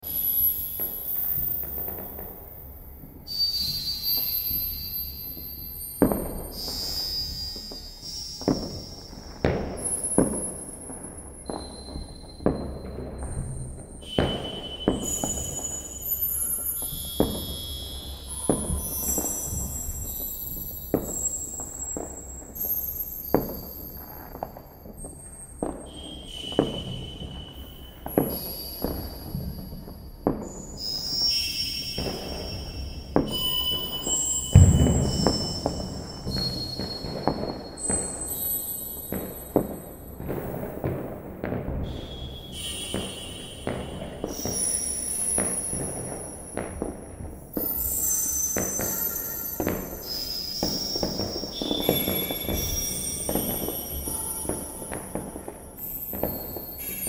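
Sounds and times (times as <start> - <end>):
fireworks: 0.0 - 57.0.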